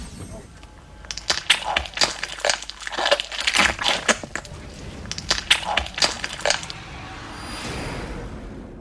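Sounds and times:
foley of bones snapping as dragon egg is pulled out: 1.0 - 6.8.

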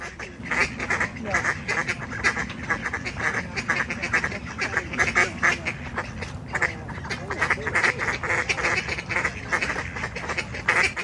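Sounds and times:
ducks quacking at each other on a bank and in the water: 0.0 - 11.0.

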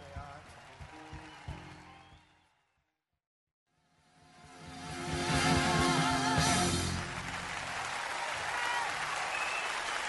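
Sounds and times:
large live concert audience clapping and cheering: 0.0 - 2.8, 5.4 - 10.0.

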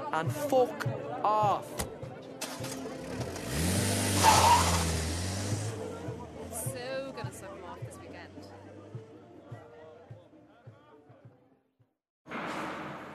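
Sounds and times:
speech: 0.1 - 1.9, 2.6 - 4.6
car engine revving as the vehicle pulls away: 2.4 - 6.8.

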